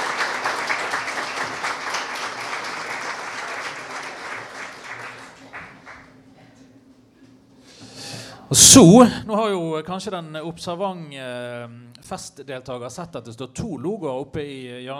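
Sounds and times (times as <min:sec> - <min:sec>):
audience applause: 0:00.0 - 0:06.1
speech: 0:08.5 - 0:14.9.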